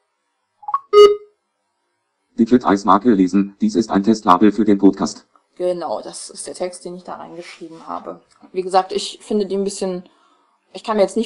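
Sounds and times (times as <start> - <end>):
label scanner beeping while scanning a label: 0.6 - 1.3
speech: 2.4 - 11.2.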